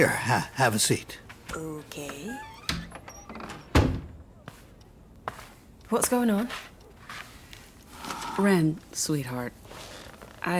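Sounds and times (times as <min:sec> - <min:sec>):
speech: 0:00.0 - 0:02.5, 0:05.9 - 0:06.7, 0:08.4 - 0:10.5
door swinging shut with a solid thud: 0:02.6 - 0:04.2.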